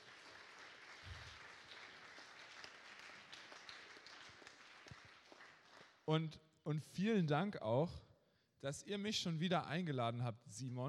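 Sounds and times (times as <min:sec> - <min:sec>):
audience applause for musicians: 0:00.0 - 0:06.0
sharp individual claps: 0:00.0 - 0:06.0
speech: 0:06.1 - 0:10.8.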